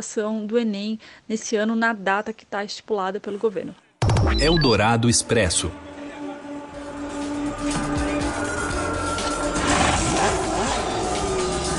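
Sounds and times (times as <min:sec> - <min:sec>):
speech: 0:00.0 - 0:05.9
Formula 1 engines roaring: 0:05.1 - 0:11.7.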